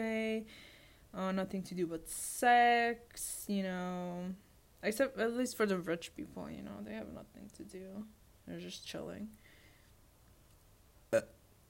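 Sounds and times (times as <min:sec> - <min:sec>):
speech: 0:00.0 - 0:09.4, 0:11.1 - 0:11.4
short firm burp: 0:11.1 - 0:11.4.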